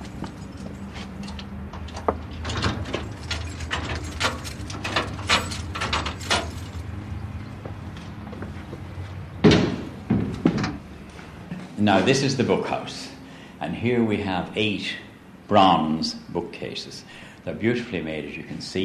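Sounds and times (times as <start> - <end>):
door clunking and creaking open: 0.0 - 6.9, 9.4 - 10.9
metallic key jangling in a lock: 2.4 - 6.9
speech: 11.8 - 18.8.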